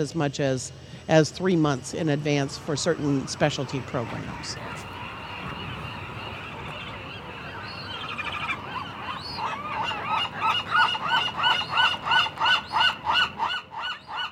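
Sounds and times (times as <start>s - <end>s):
speech: 0.0s - 4.9s
nesting birds honking: 1.6s - 14.3s.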